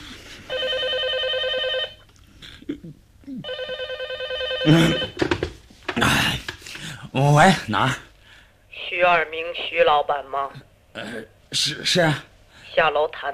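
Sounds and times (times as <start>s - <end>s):
telephone bell ringing: 0.5s - 2.0s, 3.4s - 5.2s
speech: 4.7s - 5.1s, 7.2s - 8.0s, 9.0s - 13.3s.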